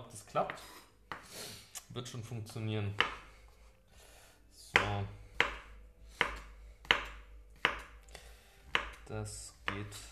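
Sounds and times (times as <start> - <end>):
speech: 0.1 - 0.8, 1.9 - 3.2, 9.1 - 10.0
knife slicing button mushrooms on a cutting board: 2.9 - 3.4, 4.7 - 8.0, 8.7 - 10.0.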